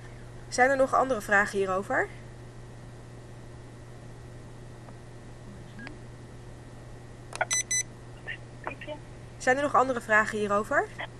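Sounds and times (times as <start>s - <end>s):
faint steady hum: 0.0s - 11.1s
speech: 0.5s - 2.2s, 9.4s - 11.1s
short electronic beeps: 7.4s - 7.9s.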